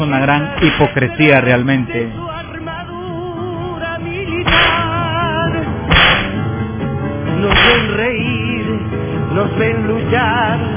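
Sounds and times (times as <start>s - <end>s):
speech: 0.0s - 2.4s, 9.4s - 10.7s
steady musical bed: 0.0s - 10.7s
whip cracks: 4.5s - 4.9s, 5.9s - 6.4s, 7.5s - 8.0s.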